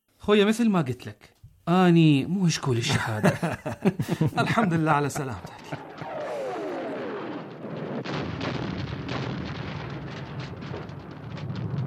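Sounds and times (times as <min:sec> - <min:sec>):
speech: 0:00.2 - 0:05.8
laughter: 0:02.8 - 0:06.3
explosions: 0:04.0 - 0:11.8
bursts of rapid gunfire: 0:05.6 - 0:10.9.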